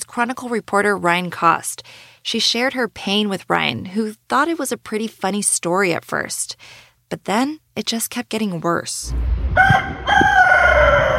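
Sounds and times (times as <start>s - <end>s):
speech: 0.2s - 10.3s
rooster crowing: 9.6s - 11.1s.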